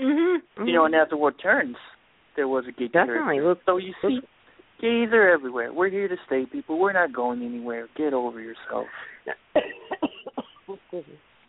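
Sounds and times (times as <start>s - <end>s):
speech: 0.6s - 9.8s, 10.7s - 11.3s
sharp cough: 9.3s - 10.7s.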